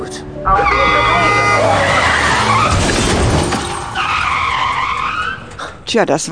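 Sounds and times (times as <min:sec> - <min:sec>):
speech: 0:00.4 - 0:01.0, 0:05.9 - 0:06.3
taxi crashing into another car: 0:00.5 - 0:06.0
taxi tires squealing while skidding: 0:00.5 - 0:06.0.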